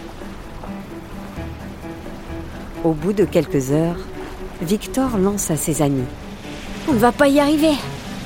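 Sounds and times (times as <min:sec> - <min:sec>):
stormy sea waves churning and surging: 0:00.0 - 0:08.2
speech: 0:02.8 - 0:06.2, 0:06.9 - 0:07.9.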